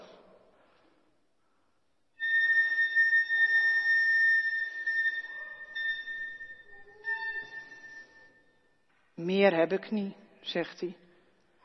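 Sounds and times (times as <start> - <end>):
flute holding a single high note: 2.2 - 8.4
speech: 9.2 - 11.0.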